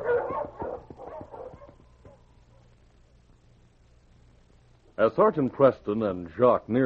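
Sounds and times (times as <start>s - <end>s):
team of husky sled dogs barking and yipping: 0.0s - 2.6s
speech: 5.0s - 6.8s.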